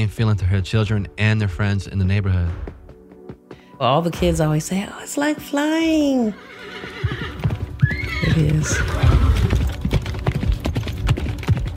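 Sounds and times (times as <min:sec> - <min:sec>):
speech: 0:00.0 - 0:02.8, 0:03.8 - 0:07.3, 0:08.3 - 0:09.5
horse hooves clip-clopping on hard ground: 0:06.6 - 0:11.7.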